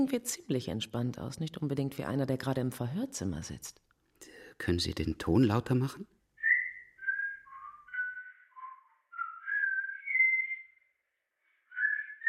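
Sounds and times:
speech: 0.0s - 6.2s
man whistling a tune: 6.4s - 10.8s, 11.7s - 12.2s.

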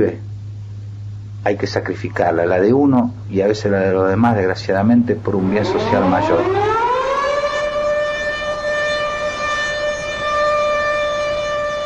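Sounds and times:
speech: 0.0s - 0.3s, 1.4s - 6.8s
morning siren sounding across a town near railway sheds: 5.2s - 11.8s.

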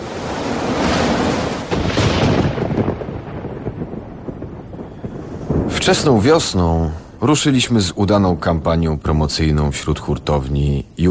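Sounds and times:
storm rumbling roar: 0.0s - 10.3s
speech: 5.8s - 11.0s.

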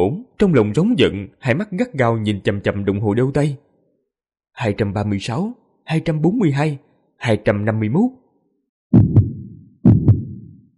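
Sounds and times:
speech: 0.0s - 3.6s, 4.6s - 8.2s
heartbeat sound effect: 8.9s - 10.7s.

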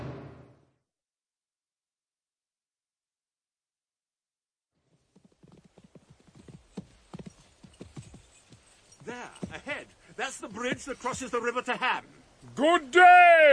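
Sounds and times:
hooves of a white horse being ridden clip-clopping: 4.8s - 12.0s
speech: 9.2s - 13.5s.

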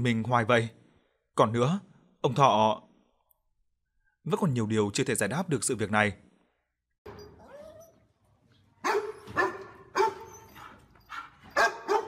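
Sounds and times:
speech: 0.0s - 0.8s, 1.4s - 2.9s, 4.2s - 6.2s
dog whining: 7.1s - 8.1s, 8.9s - 12.0s
several dogs barking fiercely outside: 8.8s - 12.0s.

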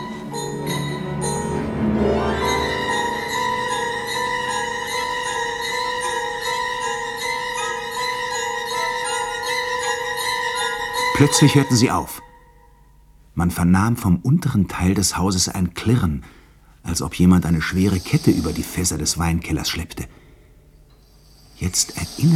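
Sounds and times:
many house bells ringing loudly together: 0.0s - 12.7s
speech: 11.2s - 12.3s, 13.4s - 20.2s, 21.6s - 22.3s.

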